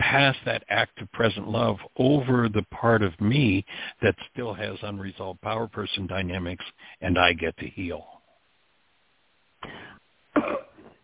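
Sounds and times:
speech: 0.1s - 8.1s
short husky coughs: 9.6s - 11.0s.

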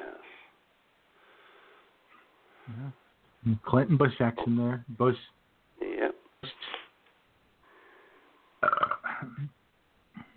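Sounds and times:
speech: 2.9s - 5.4s
loud burp after drinking beer: 8.6s - 9.5s.

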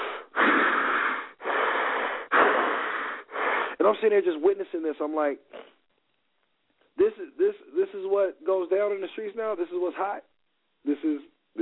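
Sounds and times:
person imitating heavy breathing into a phone: 0.0s - 3.8s
speech: 3.8s - 5.7s, 7.1s - 11.6s.

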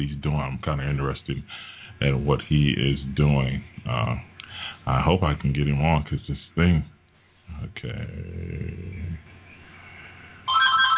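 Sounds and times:
speech: 0.0s - 6.9s, 7.5s - 9.4s
low guttural vocal rumble: 7.5s - 9.3s
phone ringing with bright electronic tone: 10.5s - 10.9s.

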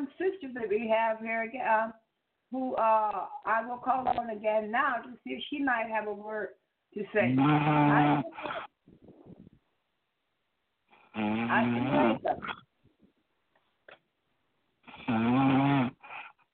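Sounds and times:
speech: 0.6s - 8.7s, 11.2s - 12.6s, 15.1s - 16.0s
woman snoring heavily with wheezing breaths: 7.2s - 8.4s, 11.0s - 12.5s, 14.9s - 16.4s.

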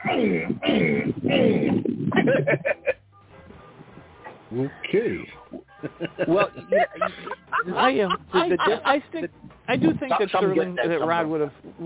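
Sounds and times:
voice imitating pigeon cooing: 0.0s - 2.2s
laughter: 2.1s - 3.0s, 5.5s - 11.2s
speech: 4.6s - 5.4s, 6.2s - 7.1s, 7.8s - 11.8s.

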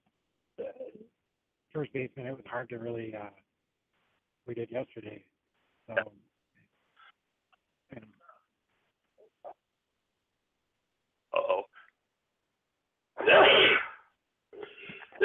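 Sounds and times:
speech: 1.8s - 3.4s, 4.5s - 5.3s, 5.9s - 6.2s
loud sneeze: 13.2s - 14.1s, 14.7s - 15.2s.

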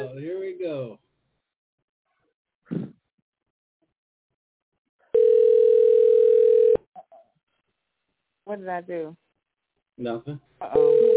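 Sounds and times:
telephone ring tone of an incoming call: 5.2s - 6.8s, 10.8s - 11.1s
speech: 8.5s - 9.2s, 10.0s - 11.1s.

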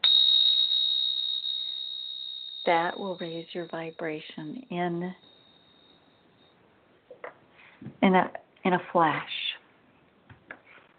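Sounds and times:
handheld chime ringing with a bright high pure tone after a strike: 0.0s - 6.6s
speech: 2.6s - 5.4s, 7.9s - 9.4s.

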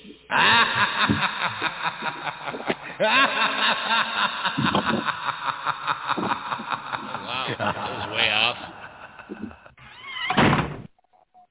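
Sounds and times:
laughter: 0.0s - 9.8s
speech: 0.3s - 6.3s
door swinging shut with a dull solid thunk: 10.3s - 10.9s.

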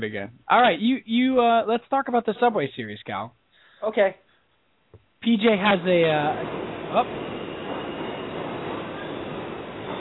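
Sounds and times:
speech: 0.0s - 4.2s, 5.2s - 7.3s
subway train rumble: 5.3s - 9.9s.

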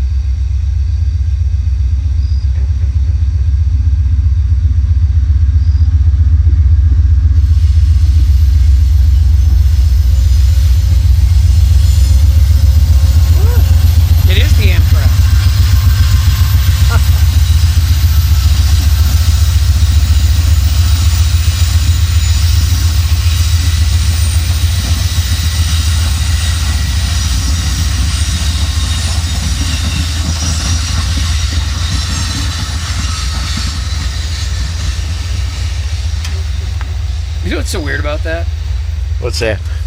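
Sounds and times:
train rumbling on tracks at about 25 miles an hour: 0.0s - 39.8s
speech: 39.2s - 39.7s.

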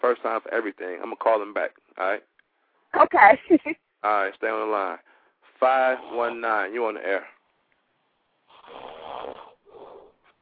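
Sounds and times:
speech: 0.0s - 2.3s, 2.9s - 7.3s
caller snoring over a radio call-in phone line: 5.8s - 6.5s, 8.5s - 10.2s.

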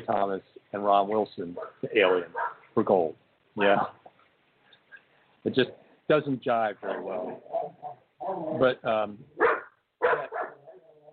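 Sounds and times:
speech: 0.1s - 4.0s, 5.4s - 9.5s
dog barking: 1.6s - 2.7s, 9.4s - 10.9s
faint wavering dog whine: 7.1s - 8.8s, 9.4s - 11.1s.

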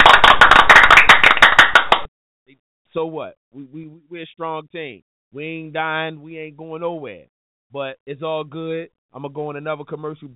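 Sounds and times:
people clapping in a round of applause: 0.0s - 2.1s
speech: 3.0s - 10.3s.

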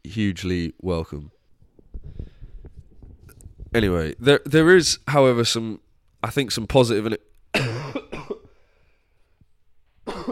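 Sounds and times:
speech: 0.2s - 1.4s, 3.7s - 7.6s
harsh coughs: 7.5s - 8.6s, 10.0s - 10.3s.

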